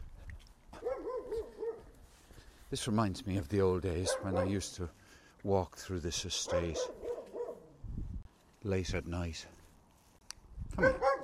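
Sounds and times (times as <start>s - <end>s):
dog giving high tonal yelping barks: 0.8s - 1.9s, 4.0s - 4.6s, 6.5s - 7.7s, 10.8s - 11.2s
speech: 2.7s - 7.0s, 8.6s - 9.6s, 10.8s - 11.1s.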